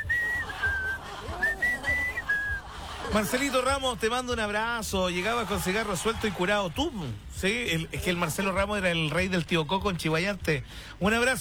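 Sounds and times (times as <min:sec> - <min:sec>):
person whistling a tune: 0:00.0 - 0:03.8
laughter: 0:00.0 - 0:10.2
speech: 0:03.1 - 0:11.4.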